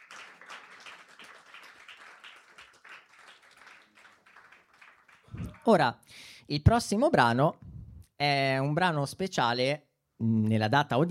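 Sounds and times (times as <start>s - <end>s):
audience applause: 0.0s - 5.8s
speech: 5.6s - 11.0s.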